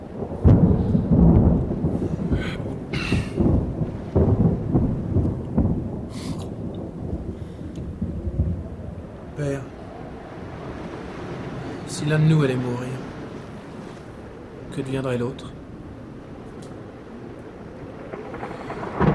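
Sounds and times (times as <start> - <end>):
deep thunder rumbling: 0.0 - 19.1
speech: 12.1 - 12.9, 14.8 - 15.6.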